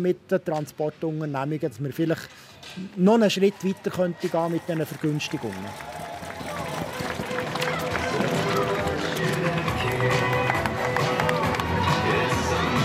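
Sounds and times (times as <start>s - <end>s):
speech: 0.0s - 6.0s
spectators and runners murmuring and chattering at a race start and finish area: 3.6s - 12.8s
runners' footsteps at an evening race: 5.7s - 11.8s.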